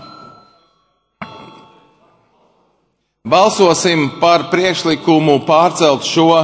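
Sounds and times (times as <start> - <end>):
parliamentary voting bell ringing: 0.0 - 2.0
murmuring parliamentary chamber background: 0.2 - 3.3
speech: 3.3 - 6.4.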